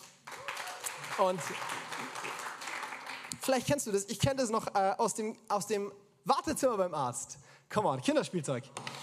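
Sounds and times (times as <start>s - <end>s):
crowd of many hands clapping: 0.2s - 3.4s
speech: 1.2s - 1.8s, 3.4s - 9.0s.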